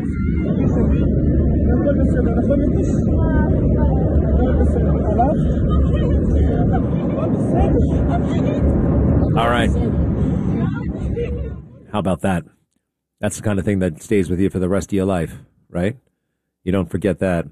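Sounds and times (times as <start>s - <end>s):
airplane cabin roar at the back of the plane: 0.0s - 12.0s
voices murmuring in airplane cabin: 0.0s - 12.0s
speech: 2.0s - 3.3s, 7.8s - 11.2s, 11.9s - 12.6s, 13.2s - 17.5s.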